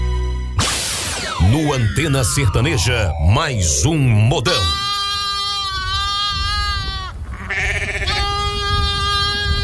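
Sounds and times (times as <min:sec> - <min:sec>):
speech: 0:01.4 - 0:04.8
goat bleating in long wavering cries: 0:04.4 - 0:09.6.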